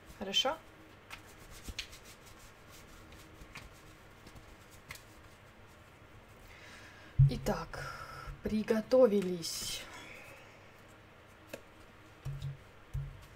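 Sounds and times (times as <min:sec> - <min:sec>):
speech: 0:00.2 - 0:00.7, 0:07.5 - 0:09.9
playing cards rustling as drawn from a deck: 0:01.0 - 0:05.8.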